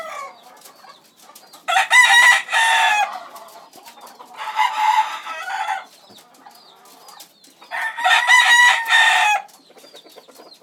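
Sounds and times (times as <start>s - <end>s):
chicken crowing in a coop: 0.0s - 0.4s, 1.7s - 3.2s, 4.4s - 5.9s, 7.7s - 9.5s.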